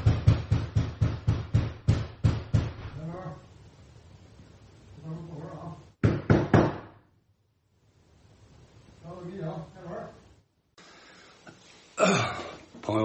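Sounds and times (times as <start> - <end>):
police knocking on the door of a home in Tianjin China: 0.0 - 3.0, 6.0 - 7.0
speech: 12.9 - 13.0.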